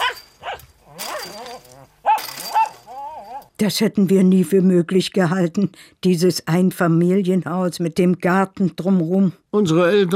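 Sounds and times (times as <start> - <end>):
small poodle barking at someone passing its family house garden: 0.0 - 3.4
speech: 3.6 - 10.1.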